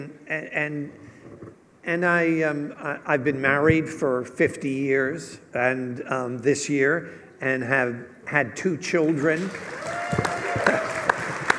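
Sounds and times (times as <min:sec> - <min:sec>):
speech: 0:00.0 - 0:01.1, 0:01.8 - 0:10.3
audience applause in a large room: 0:09.4 - 0:11.5.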